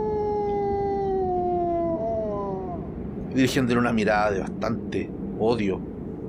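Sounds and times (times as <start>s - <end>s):
wolf howling: 0.0s - 3.0s
low rumbling background: 0.0s - 6.2s
speech: 3.4s - 5.9s.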